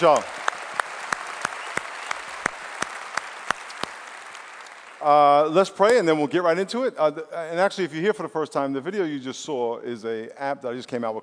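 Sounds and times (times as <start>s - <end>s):
speech: 0.0s - 0.4s, 5.0s - 11.2s
audience applauding: 0.0s - 5.6s.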